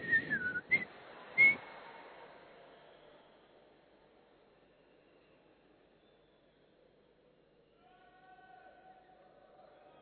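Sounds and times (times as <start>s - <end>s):
man whistling: 0.0s - 0.8s, 1.4s - 1.6s.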